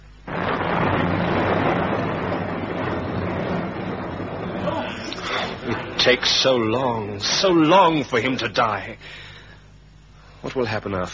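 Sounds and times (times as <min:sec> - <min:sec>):
thunderstorm rumbling: 0:00.0 - 0:08.2
speech: 0:06.0 - 0:09.3, 0:10.4 - 0:11.1.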